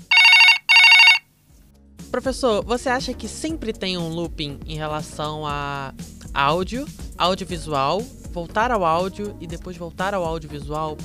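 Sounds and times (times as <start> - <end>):
telephone ringing with bright buzzy electronic trills: 0.0 - 1.3
speech: 2.2 - 11.0.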